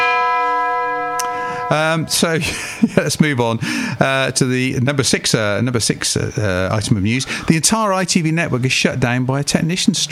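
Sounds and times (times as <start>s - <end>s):
bell ringing as a sound effect: 0.0s - 3.0s
speech: 1.7s - 10.0s.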